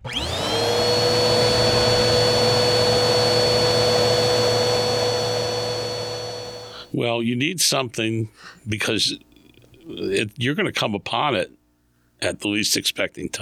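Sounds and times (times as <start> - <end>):
shop vacuum running: 0.0 - 6.9
speech: 7.0 - 9.3, 9.9 - 11.6, 12.2 - 13.4.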